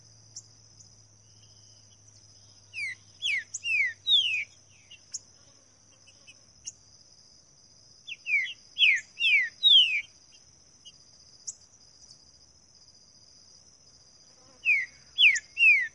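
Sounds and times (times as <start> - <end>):
green-winged saltator whistled song in the bush: 2.8 - 4.6, 8.1 - 10.1, 14.6 - 15.9.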